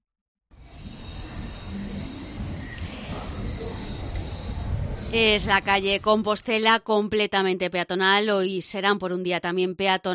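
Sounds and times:
soft outdoor hum on a pedestrianised street: 0:00.6 - 0:06.6
faint murmur on a pedestrianised street: 0:01.1 - 0:06.3
speech: 0:05.1 - 0:10.1.

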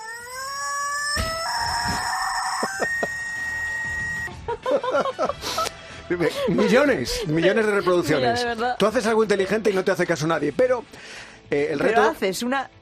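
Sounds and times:
rubber chicken squawking in a vacuum cleaner tube: 0:00.0 - 0:04.3
laughter: 0:04.3 - 0:08.1
speech: 0:04.7 - 0:12.7.

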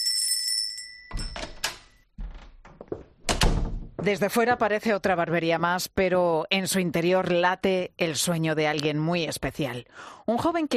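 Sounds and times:
small shop door bell ringing in Murcia: 0:00.0 - 0:01.4
shop door swinging with clunks and rattles: 0:01.2 - 0:04.2
speech: 0:04.0 - 0:10.7.

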